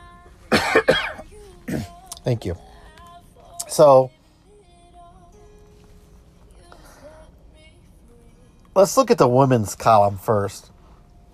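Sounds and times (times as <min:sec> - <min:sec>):
faint hum: 0:00.0 - 0:11.3
person coughing: 0:00.5 - 0:02.0
speech: 0:02.3 - 0:02.7, 0:03.8 - 0:04.2, 0:08.8 - 0:10.7.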